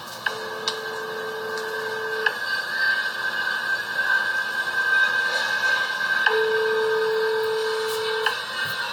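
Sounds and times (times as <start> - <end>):
steady electronic whine: 0.0 - 8.9
outgoing call ring tone over the phone line: 0.3 - 2.4, 6.3 - 8.3.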